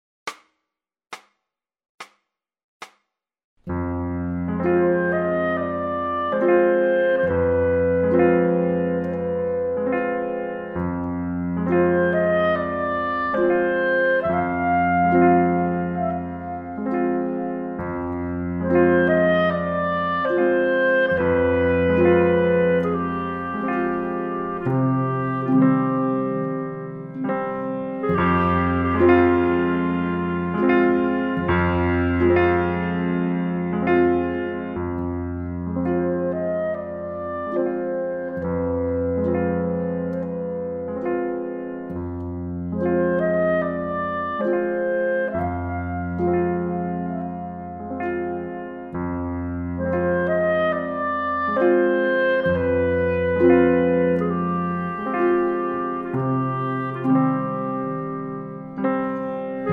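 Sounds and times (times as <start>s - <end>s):
solo piano as clarinet reference: 3.6s - 59.7s.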